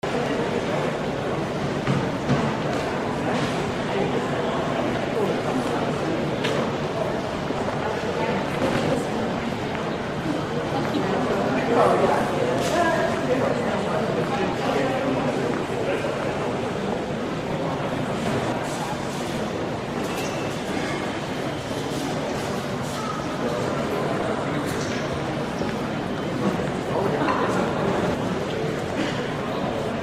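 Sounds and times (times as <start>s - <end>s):
large crowd in an airport: 0.0s - 30.0s.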